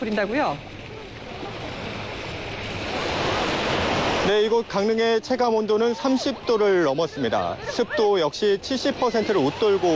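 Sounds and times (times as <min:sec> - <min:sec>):
speech: 0:00.0 - 0:00.7, 0:04.2 - 0:09.9
surf washing ashore at Gyeongpo Beach in Gangneung South Korea: 0:00.0 - 0:09.9
laughter: 0:05.8 - 0:09.9.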